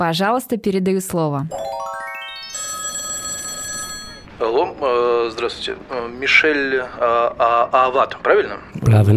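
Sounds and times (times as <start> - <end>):
speech: 0.0 - 1.8, 4.4 - 9.1
phone electronic ringtone: 1.5 - 4.3.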